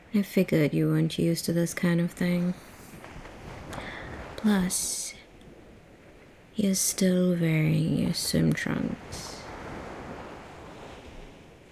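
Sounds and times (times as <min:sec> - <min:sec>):
speech: 0:00.1 - 0:02.7, 0:04.4 - 0:05.2, 0:06.6 - 0:09.3
ocean waves on a beach: 0:02.2 - 0:11.7
wind noise: 0:02.6 - 0:06.6, 0:07.6 - 0:11.7.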